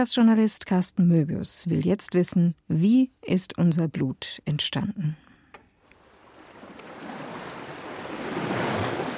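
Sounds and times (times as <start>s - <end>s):
speech: 0.0s - 5.2s
ocean surf breaking on the shore: 5.8s - 9.1s.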